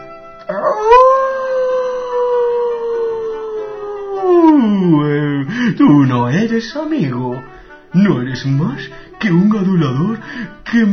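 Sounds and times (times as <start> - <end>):
wolf howling: 0.5 - 5.5
speech: 5.8 - 10.9.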